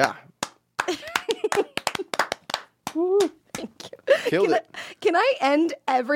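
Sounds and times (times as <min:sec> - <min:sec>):
speech: 0:00.0 - 0:00.2, 0:04.3 - 0:06.1
small group of people clapping: 0:00.0 - 0:03.6.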